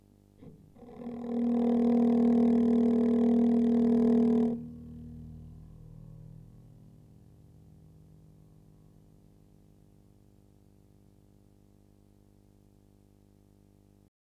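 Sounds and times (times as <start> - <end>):
39Hz low frequency tone: 0.4 - 9.3.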